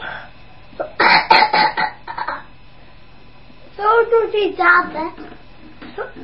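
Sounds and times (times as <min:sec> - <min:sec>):
person coughing hoarsely: 0:00.8 - 0:02.5
speech: 0:04.3 - 0:05.2.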